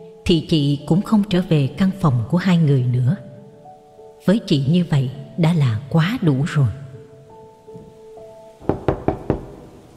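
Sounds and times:
speech: 0.3 - 3.3, 4.2 - 6.8
knocking on a door: 8.6 - 9.8.

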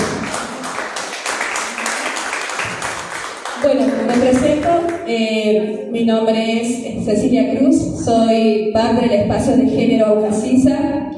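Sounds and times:
applause from an audience at a community gathering in Jujuy: 0.0 - 5.0
speech: 3.6 - 11.1.

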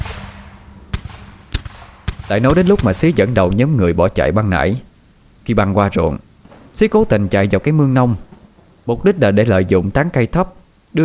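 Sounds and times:
gunshots fired at a man in the rain: 0.0 - 3.4
steady hissing background: 0.0 - 11.0
speech: 2.3 - 4.9, 5.5 - 6.2, 6.8 - 11.0.

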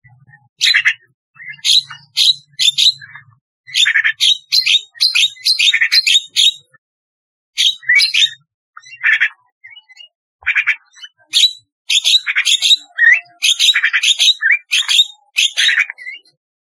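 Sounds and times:
starling chattering and squeaking: 1.6 - 3.1, 3.8 - 6.7, 7.6 - 8.4, 10.5 - 15.9.

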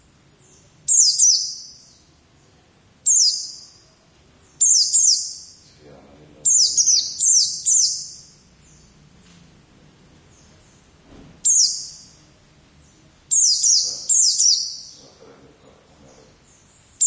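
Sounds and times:
faint low background sounds: 0.0 - 17.0
white-eye singing: 0.4 - 2.1, 3.0 - 5.8, 6.4 - 9.0, 10.3 - 15.3, 15.9 - 17.0.

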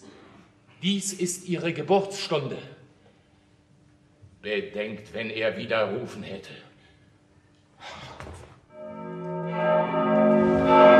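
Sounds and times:
speech: 0.8 - 2.8, 4.4 - 6.7
church bell ringing: 8.7 - 10.9.

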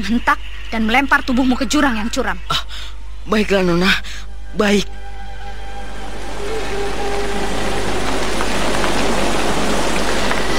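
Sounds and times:
speech: 0.0 - 5.0
steady rain falling: 4.7 - 10.5.

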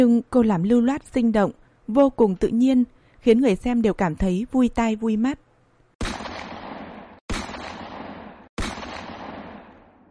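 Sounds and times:
speech: 0.0 - 5.4
rifle shots fired at a shooting target: 6.0 - 10.0.

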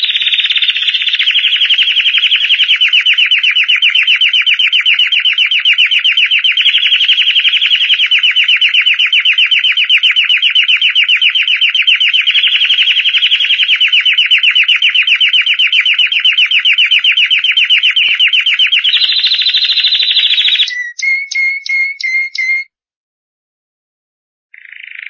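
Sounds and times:
champion singing canary trilling and whistling: 0.0 - 22.7, 24.5 - 25.0.

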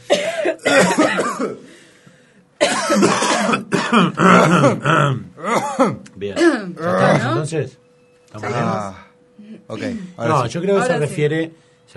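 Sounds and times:
deliberate forced coughing on cue: 0.0 - 1.8, 2.6 - 7.4
speech: 4.0 - 11.9.

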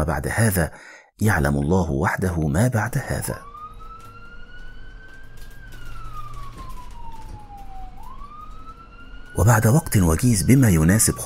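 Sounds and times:
speech: 0.0 - 3.5, 9.4 - 11.2
ambulance siren wailing at night: 2.6 - 11.2.

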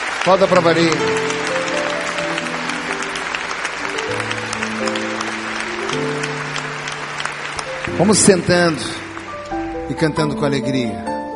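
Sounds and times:
congregation clapping at a Catholic Mass after the Gospel reading: 0.0 - 10.5
speech: 0.2 - 1.2, 8.0 - 9.0, 9.9 - 11.1.

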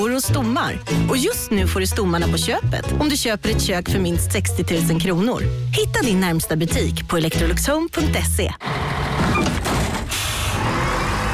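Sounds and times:
speech: 0.1 - 8.8
bus engine rumble: 8.1 - 11.3
bus air-brake hiss: 10.1 - 10.6.

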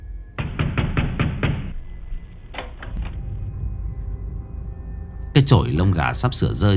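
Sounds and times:
steady low rumble of a thunderstorm: 0.0 - 6.7
wooden door rattling in a thunderstorm: 0.4 - 3.2
speech: 5.4 - 6.7.

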